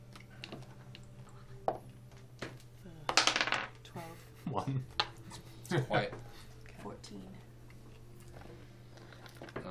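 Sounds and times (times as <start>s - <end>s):
dice rattling and clattering across a hard table: 3.1s - 3.8s
speech: 4.6s - 5.0s, 5.7s - 6.2s, 7.0s - 7.5s.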